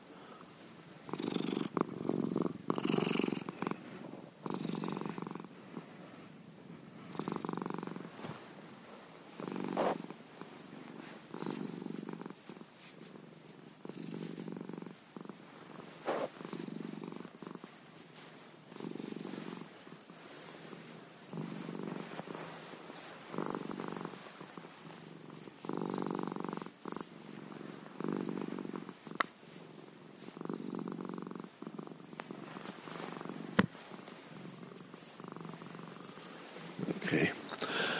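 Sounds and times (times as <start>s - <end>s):
big heavy cat purring in Windsor: 0.0s - 37.9s.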